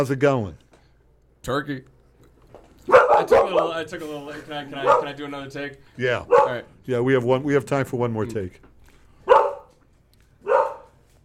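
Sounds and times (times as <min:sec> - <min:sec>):
speech: 0:00.0 - 0:00.6, 0:01.4 - 0:01.9, 0:03.1 - 0:08.7
low hum: 0:00.0 - 0:11.2
dog barking in a hallway: 0:02.8 - 0:03.9, 0:04.8 - 0:05.2, 0:06.2 - 0:06.7, 0:09.2 - 0:09.8, 0:10.4 - 0:11.0.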